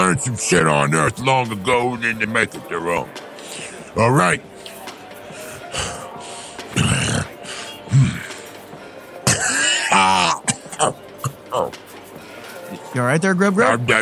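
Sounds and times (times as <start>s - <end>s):
speech: 0.1s - 3.2s, 3.9s - 4.5s, 12.9s - 14.0s
rough breaths: 3.2s - 9.9s, 11.4s - 12.8s
person coughing: 9.2s - 11.8s
throat clearing: 9.2s - 11.8s.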